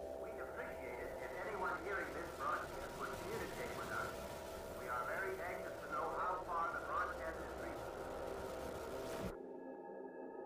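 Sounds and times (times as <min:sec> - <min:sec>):
radio static with steady hiss: 0:00.0 - 0:09.4
narrow-band voice of an early radio broadcast: 0:00.2 - 0:04.2, 0:04.8 - 0:07.9.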